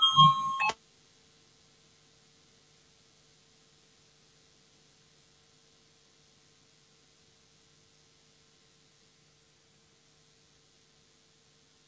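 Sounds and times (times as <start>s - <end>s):
electronic voting bell ringing in the Latvian parliament: 0.0s - 0.8s.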